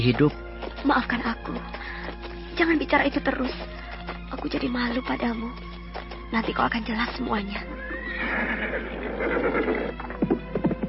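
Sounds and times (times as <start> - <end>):
speech: 0.0 - 1.9, 2.6 - 3.8, 4.4 - 5.7, 6.3 - 10.1
horse hoofbeats thudding on a footpath: 0.0 - 10.8
horse carrying two riders whinnying: 7.7 - 10.4.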